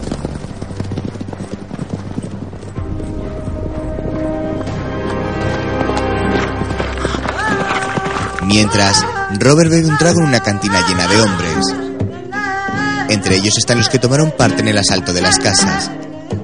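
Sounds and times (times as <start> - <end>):
white horse galloping with a rider: 0.0 - 11.6
speech: 8.5 - 11.8, 13.1 - 16.0.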